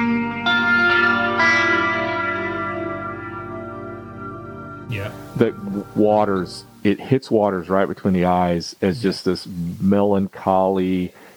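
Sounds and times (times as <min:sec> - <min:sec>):
slow four-note electric guitar phrase with echo and reverb: 0:00.0 - 0:06.6
speech: 0:05.0 - 0:11.3.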